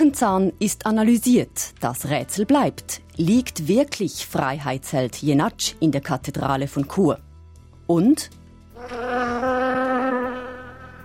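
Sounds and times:
speech: 0.0s - 7.3s, 7.9s - 9.6s
bees buzzing: 8.8s - 11.0s.

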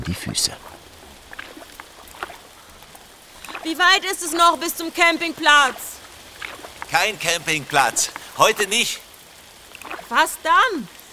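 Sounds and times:
heavy rain hissing: 0.0s - 11.1s
speech: 0.1s - 0.8s, 3.6s - 5.9s, 6.9s - 9.0s, 10.1s - 11.0s
raindrops splattering and ticking on a nearby surface: 1.3s - 2.5s, 3.3s - 3.8s, 6.4s - 7.0s, 9.7s - 10.2s.

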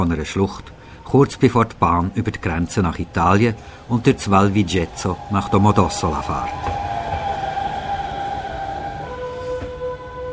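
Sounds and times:
speech: 0.0s - 6.7s
train rolling slowly past: 0.0s - 10.3s
train wheels squealing through a tight curve: 3.0s - 10.3s.

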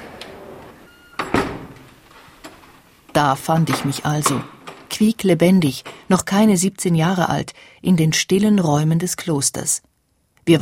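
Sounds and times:
door opening as people walk into a convent: 0.0s - 6.5s
speech: 3.2s - 10.5s.

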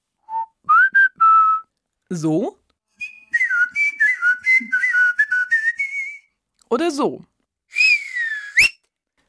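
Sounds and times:
person whistling in several contrasting styles: 0.2s - 1.7s, 3.0s - 6.3s, 7.7s - 8.8s
speech: 2.1s - 2.6s, 6.7s - 7.3s.

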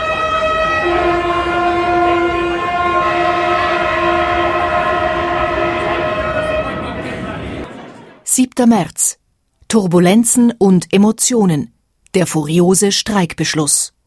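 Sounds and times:
freight train horn blast: 0.0s - 7.7s
speech: 8.6s - 14.0s.

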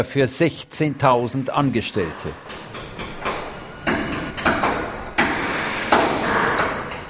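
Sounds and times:
speech: 0.0s - 2.8s
steady industrial noise: 0.0s - 7.0s
drilling in a large aircraft assembly hall: 1.9s - 7.0s
pneumatic riveting in a large aircraft assembly hall: 2.1s - 7.0s.

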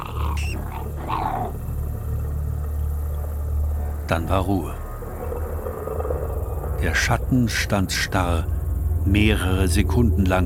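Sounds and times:
dog snarling and growling while seizing a wild animal: 0.0s - 2.2s
steady low rumble: 0.0s - 10.4s
speech: 4.1s - 4.8s, 6.8s - 10.4s.

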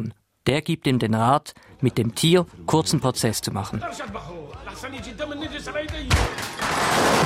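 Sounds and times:
speech: 0.0s - 6.2s
laughter: 3.7s - 5.9s
gunshot in a film scene: 6.1s - 7.2s
rapid gunfire in a film scene: 6.1s - 7.2s.

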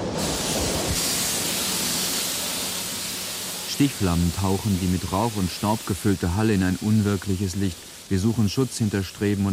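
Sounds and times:
crackling bursts: 0.2s - 9.5s
molten carbide hissing as it pours across a furnace floor: 0.2s - 9.5s
speech: 3.8s - 9.5s.

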